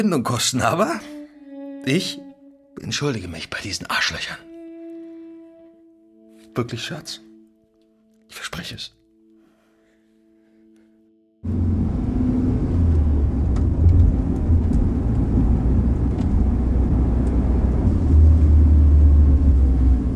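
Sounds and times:
speech: 0.0 - 1.2, 1.8 - 4.5, 6.6 - 7.3, 8.3 - 9.0, 11.4 - 11.6
car engine rumbling while driving and parking: 11.4 - 20.1.

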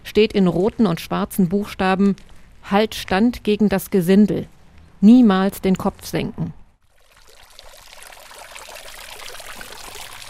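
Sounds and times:
speech: 0.2 - 6.6
fountain splashing and trickling water in village square: 6.9 - 10.2.

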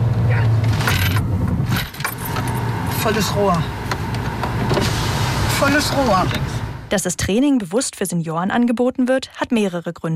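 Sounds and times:
noisy low car engine tone: 0.0 - 7.0
loud steady road rumble: 0.0 - 7.3
car braking hard during a driving safety training for seniors: 0.2 - 6.9
speech: 3.0 - 3.8, 5.6 - 10.1.

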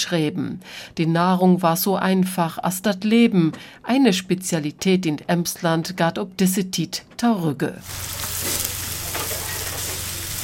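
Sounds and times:
speech: 0.0 - 8.7
buckwheat pancake batter sizzling in a pan on a kitchen stove: 7.8 - 10.4.

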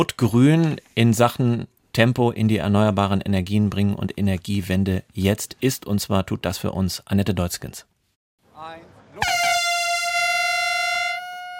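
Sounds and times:
speech: 0.0 - 7.9, 8.6 - 9.3
air horn blast at a ceremony in Stade Germany: 9.2 - 11.5.

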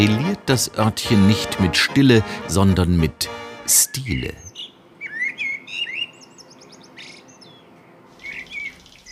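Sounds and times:
speech: 0.0 - 4.5
birds chirping and twittering in the Black Forest: 3.7 - 9.1.

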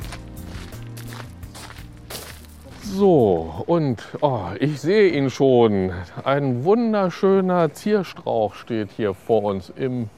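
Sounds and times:
footsteps walking through a garden: 0.0 - 4.3
speech: 2.9 - 10.1.

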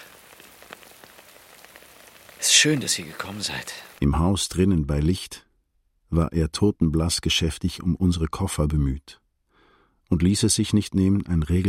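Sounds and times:
rain pattering on a surface: 0.0 - 4.0
speech: 2.4 - 5.5, 6.1 - 9.2, 10.1 - 11.6.

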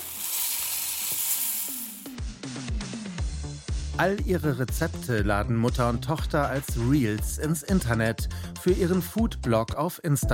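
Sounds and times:
stirring clinks and scrapes: 0.0 - 2.0
food sizzling in a pan as it is quickly fried: 0.0 - 2.3
speech: 4.0 - 10.3.

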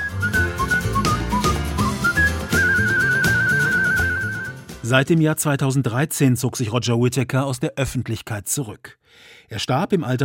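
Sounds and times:
person whistling a tune: 0.0 - 4.7
musical accompaniment: 0.0 - 5.2
speech: 4.9 - 10.2.

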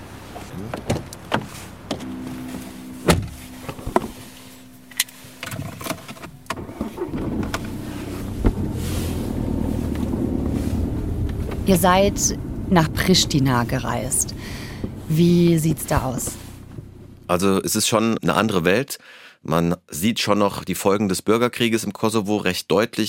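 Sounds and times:
rustling as someone gets into a car: 0.0 - 11.9
car doors clunking: 0.0 - 17.3
speech: 0.6 - 1.0, 11.7 - 14.3, 15.1 - 16.4, 17.3 - 23.0
car unlocking beep: 1.9 - 8.3.

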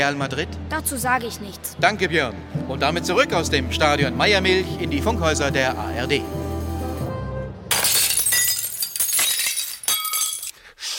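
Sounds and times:
speech: 0.0 - 6.4
glass shards falling and clinking: 7.7 - 10.6
window pane smashed to reach the window handle: 7.7 - 10.6.

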